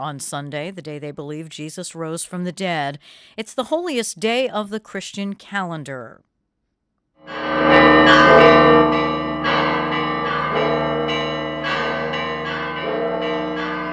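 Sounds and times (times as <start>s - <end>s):
speech: 0.0s - 6.3s
church bells pealing in Jerusalem on Easter Sunday: 7.3s - 13.9s.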